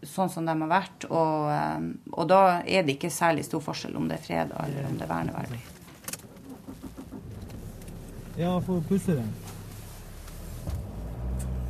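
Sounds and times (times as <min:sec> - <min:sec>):
speech: 0:00.2 - 0:05.8, 0:08.4 - 0:09.5
wind of a snow shower: 0:02.0 - 0:11.6
car engine rumbling low: 0:03.7 - 0:11.6
people climbing into a car: 0:04.8 - 0:11.6.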